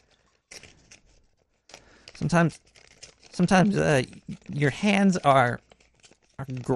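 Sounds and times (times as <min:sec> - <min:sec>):
envelope being torn open by hand: 0:00.5 - 0:06.7
speech: 0:02.2 - 0:02.7, 0:03.4 - 0:05.6, 0:06.4 - 0:06.7
short vocal sound: 0:03.4 - 0:04.6.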